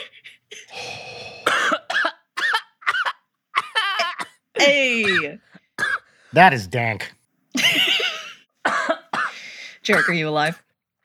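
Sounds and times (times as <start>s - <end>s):
person coughing after smoking: 0.0s - 4.4s, 5.0s - 6.1s, 8.7s - 10.6s
speech: 4.6s - 5.5s, 6.3s - 7.2s, 9.9s - 10.6s
laughter: 7.6s - 8.4s.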